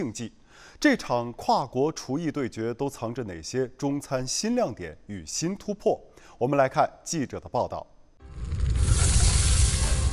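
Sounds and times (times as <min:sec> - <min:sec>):
speech: 0:00.0 - 0:07.9
low rumble: 0:08.2 - 0:10.1
wok frying at a Chinese cooking championship: 0:08.4 - 0:10.1.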